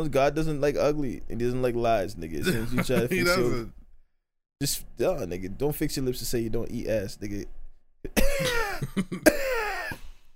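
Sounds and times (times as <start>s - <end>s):
speech: 0.0s - 3.8s, 4.6s - 9.6s
harsh raspy hacking coughing: 8.1s - 10.2s.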